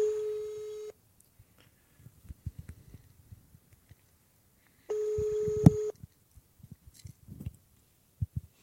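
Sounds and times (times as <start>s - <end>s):
telephone line tones: 0.0s - 1.0s, 4.9s - 6.0s.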